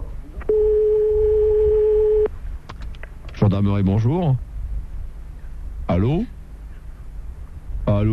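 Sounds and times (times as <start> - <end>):
telephone line ringing tone: 0.5 - 2.3
speech: 3.6 - 4.5, 5.9 - 6.4, 7.9 - 8.1.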